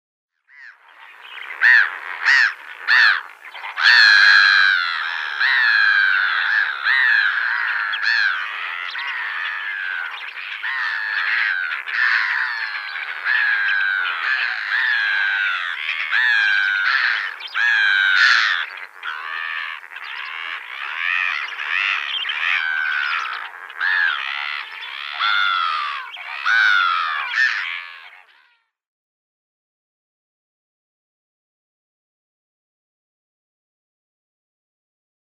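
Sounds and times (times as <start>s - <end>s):
grey-hooded gull calling: 0.5s - 28.6s.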